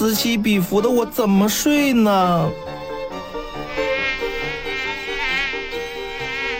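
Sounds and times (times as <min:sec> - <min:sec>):
speech: 0:00.0 - 0:02.8
mosquito whine buzzing: 0:03.2 - 0:06.5.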